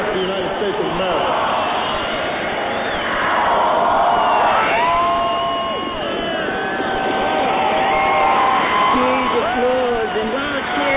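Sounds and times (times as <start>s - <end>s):
vast outdoor crowd cheering after a speech: 0.0s - 10.9s
scattered whoops and shouts: 2.8s - 10.9s.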